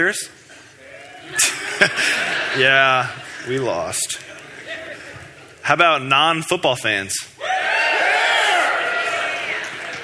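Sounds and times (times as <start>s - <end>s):
speech: 0.0s - 0.5s, 1.3s - 4.4s, 5.6s - 7.4s
laughter: 1.0s - 5.5s
large audience cheering and whooping: 7.4s - 10.0s.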